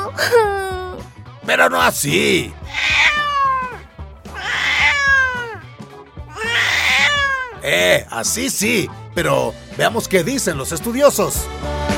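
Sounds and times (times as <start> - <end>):
speech: 1.5 - 2.8, 7.6 - 11.8
cat meowing with drawn-out wailing cries: 2.1 - 5.7, 6.3 - 8.1.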